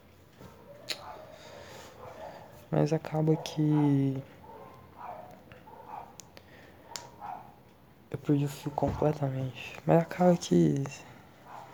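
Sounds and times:
faint dog barking outside on the street: 0.4s - 7.7s, 11.4s - 11.7s
speech: 2.7s - 4.4s, 8.3s - 11.1s.

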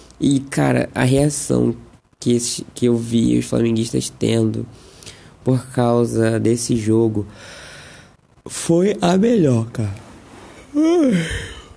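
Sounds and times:
speech: 0.2s - 7.6s, 8.4s - 10.0s, 10.8s - 11.7s
person yawning: 10.7s - 11.7s.

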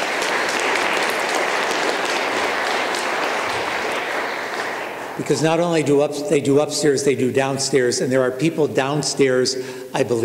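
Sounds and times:
congregation applauding: 0.0s - 5.5s
speech: 5.2s - 10.2s.

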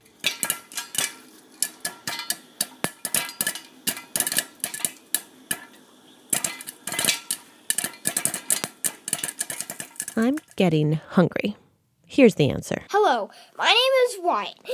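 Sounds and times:
popcorn popping in a pot: 0.0s - 10.8s
low steady hiss: 0.0s - 14.7s
speech: 10.2s - 11.6s, 12.2s - 14.7s.

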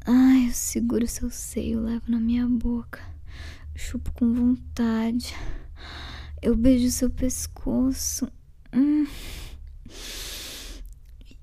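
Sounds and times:
speech: 0.1s - 9.0s
deep slow breathing against the microphone: 3.0s - 3.8s, 5.3s - 6.4s, 9.0s - 11.0s.

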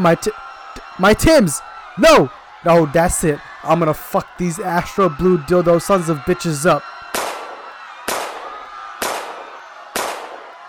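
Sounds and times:
speech: 0.0s - 0.4s, 1.0s - 6.9s
gunshot bangs with decay: 7.2s - 9.4s, 10.0s - 10.4s.

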